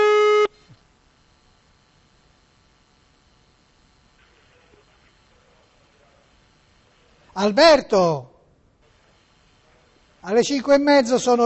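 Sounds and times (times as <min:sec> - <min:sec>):
telephone line tone while a call is being placed: 0:00.0 - 0:00.7
speech: 0:07.4 - 0:08.3, 0:10.2 - 0:11.4.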